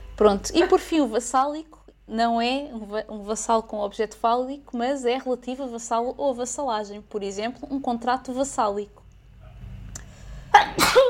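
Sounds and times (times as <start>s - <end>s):
speech: 0.2s - 9.0s
person sneezing: 10.5s - 11.0s.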